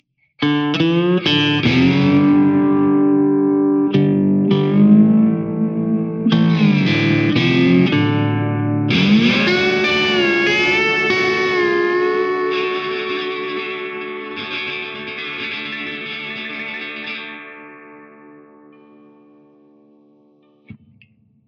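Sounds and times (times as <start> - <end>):
guitar slide: 0.4 - 20.9.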